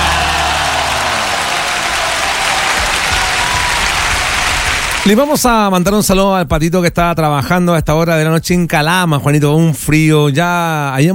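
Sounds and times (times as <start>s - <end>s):
sizable crowd applauding: 0.0s - 5.6s
speech: 5.0s - 11.1s.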